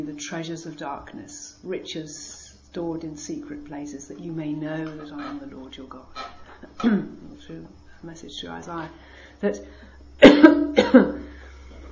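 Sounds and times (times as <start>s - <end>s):
speech: 0.0s - 11.2s
person coughing: 10.2s - 11.3s.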